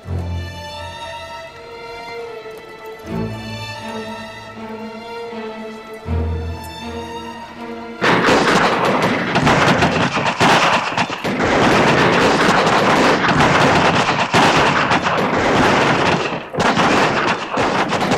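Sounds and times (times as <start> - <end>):
massed rifle volley gunfire from 750 soldiers on a barracks square: 8.0 - 18.1.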